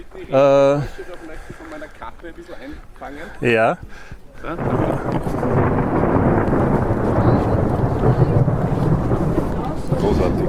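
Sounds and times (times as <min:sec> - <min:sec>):
speech: 0:00.0 - 0:05.8, 0:10.1 - 0:10.4
rain: 0:00.0 - 0:10.4
thunder rumbling during a thunderstorm: 0:04.4 - 0:10.4.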